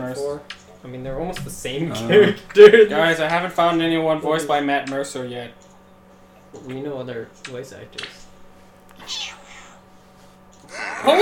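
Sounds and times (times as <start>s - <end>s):
faint steady low hum: 0.0s - 11.2s
speech: 0.1s - 5.6s, 6.5s - 8.2s, 10.8s - 11.2s
cat meowing: 9.0s - 9.8s.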